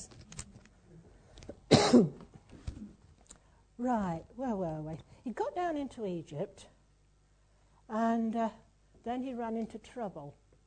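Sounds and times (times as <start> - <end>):
person coughing: 1.7 - 2.3
speech: 1.9 - 2.2, 3.8 - 6.7, 7.9 - 10.4.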